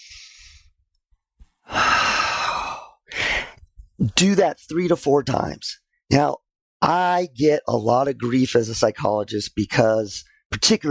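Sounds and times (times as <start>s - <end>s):
person demonstrating deep diaphragmatic breathing: 0.0s - 0.7s, 1.6s - 3.6s
speech: 4.0s - 10.8s.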